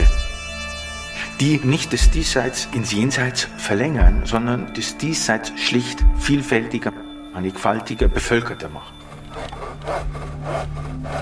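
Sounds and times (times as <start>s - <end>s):
speech: 1.4s - 9.0s
hand saw cutting through wood: 9.0s - 11.1s.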